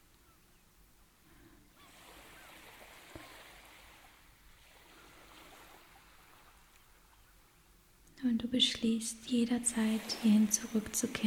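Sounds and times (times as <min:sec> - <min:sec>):
ocean waves rushing: 0:01.8 - 0:06.7, 0:09.2 - 0:11.2
speech: 0:08.4 - 0:11.2.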